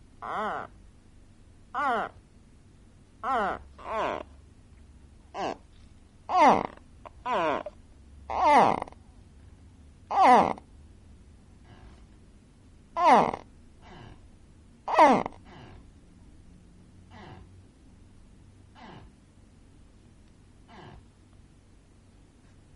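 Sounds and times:
gharial downward-sweeping grunting calls: 0:00.2 - 0:00.8, 0:01.7 - 0:02.2, 0:03.2 - 0:04.4, 0:05.3 - 0:05.7, 0:06.3 - 0:09.0, 0:10.1 - 0:10.7, 0:13.0 - 0:14.3, 0:14.9 - 0:15.8, 0:17.1 - 0:17.5.

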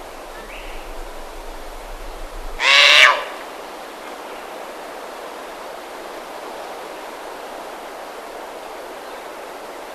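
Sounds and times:
Verreaux's sifaka harsh call: 0:02.6 - 0:03.4.

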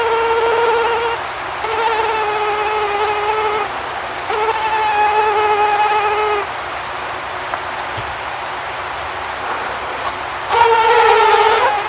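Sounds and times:
mosquito whine: 0:00.0 - 0:06.5, 0:09.4 - 0:11.8.

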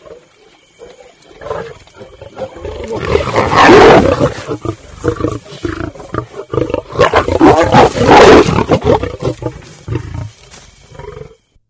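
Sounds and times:
lion roaring: 0:01.3 - 0:10.4.

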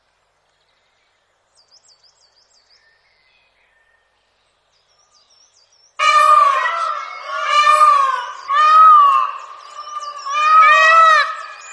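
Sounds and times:
Indian peafowl wailing: 0:06.0 - 0:11.7.

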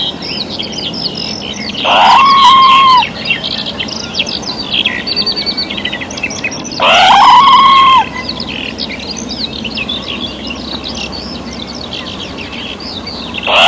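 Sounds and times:
chorus of small songbirds: 0:00.0 - 0:13.6
red squirrel giving loud drawn-out harmonic calls: 0:01.8 - 0:03.3, 0:06.8 - 0:08.8, 0:13.4 - 0:13.6.

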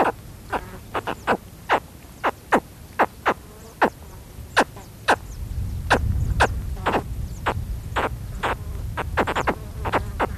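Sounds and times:
spectacled caiman giving abrupt falling chirps: 0:00.0 - 0:04.0, 0:04.6 - 0:10.3
low rumbling noise: 0:05.2 - 0:10.3.

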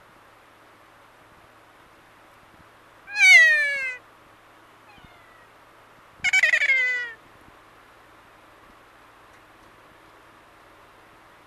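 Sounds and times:
kea giving loud harmonic screeching calls: 0:03.1 - 0:04.0, 0:04.9 - 0:05.5, 0:06.2 - 0:07.2.

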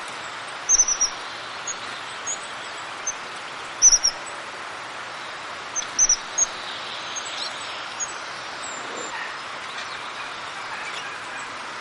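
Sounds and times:
background hiss: 0:00.0 - 0:11.7
crested tit calling with very high purring trills: 0:00.7 - 0:03.2, 0:03.8 - 0:04.2, 0:05.7 - 0:10.1.

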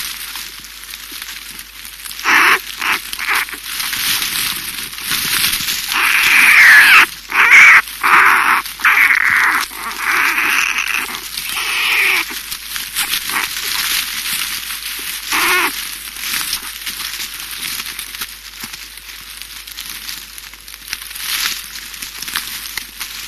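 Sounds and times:
American black bear calling with harsh squalling cries: 0:02.2 - 0:03.7, 0:05.9 - 0:14.0, 0:15.0 - 0:15.8.

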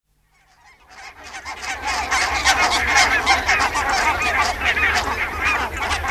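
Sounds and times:
barnacle goose flock calling with short yapping honks: 0:00.3 - 0:06.0.

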